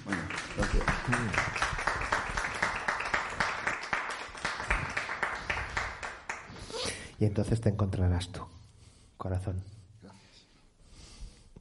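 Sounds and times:
crowd clapping: 0:00.0 - 0:06.7
speech: 0:00.6 - 0:01.7, 0:07.2 - 0:08.4, 0:09.2 - 0:09.8.

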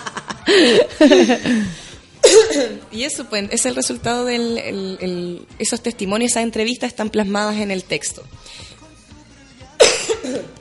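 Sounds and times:
laughter: 0:00.0 - 0:01.9
speech: 0:00.5 - 0:01.8, 0:02.4 - 0:08.7
woman coughing: 0:00.7 - 0:02.9, 0:09.8 - 0:10.5.

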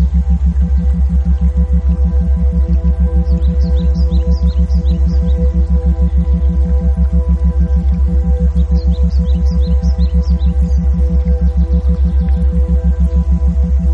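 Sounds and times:
faint birds chirping: 0:00.0 - 0:13.9
steady low binaural tone hum: 0:00.0 - 0:13.9.

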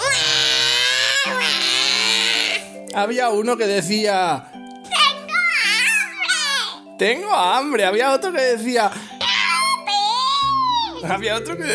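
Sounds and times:
many small babies crying in a room: 0:00.0 - 0:02.8, 0:05.4 - 0:06.9, 0:09.2 - 0:11.3
speech: 0:02.9 - 0:04.6, 0:07.0 - 0:09.1, 0:11.0 - 0:11.7.

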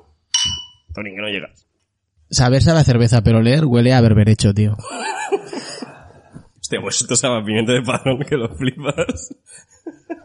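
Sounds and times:
beer glasses clinking in a toast: 0:00.3 - 0:00.9
speech: 0:01.0 - 0:01.7, 0:02.3 - 0:05.6, 0:06.7 - 0:10.1
laughter: 0:04.8 - 0:06.4, 0:07.6 - 0:10.2.

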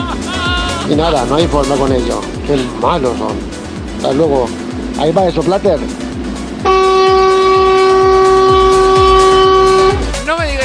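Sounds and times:
laughter: 0:00.0 - 0:01.5
moving bus engine rumble: 0:00.0 - 0:10.2
speech: 0:00.9 - 0:06.0
rhythmic low thumps inside a moving bus: 0:01.0 - 0:10.2
long loud horn-like tone: 0:06.6 - 0:10.1.

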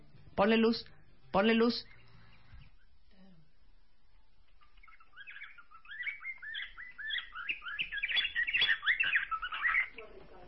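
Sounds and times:
speech: 0:00.4 - 0:02.0
budgerigar chattering warbles and chirps: 0:04.6 - 0:10.1.

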